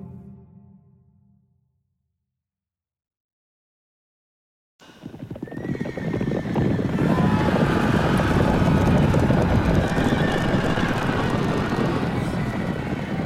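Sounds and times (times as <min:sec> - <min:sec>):
clattering horse hooves: 0:04.9 - 0:13.2
roaring fire at a performance art piece: 0:04.9 - 0:13.2
horses whinnying and neighing: 0:05.0 - 0:13.1
people shouting at a performance art piece: 0:06.9 - 0:13.2.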